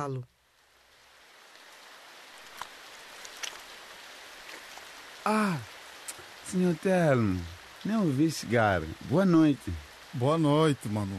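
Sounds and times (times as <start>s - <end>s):
speech: 0.0s - 0.4s, 5.2s - 5.7s, 6.5s - 11.1s
steady soft rain at night: 0.0s - 11.1s
rain drips ticking: 4.4s - 11.1s.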